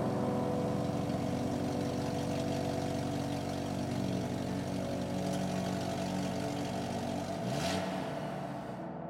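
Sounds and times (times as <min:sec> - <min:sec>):
car engine humming inside the vehicle while driving: 0:00.0 - 0:08.8
road noise: 0:00.0 - 0:08.9.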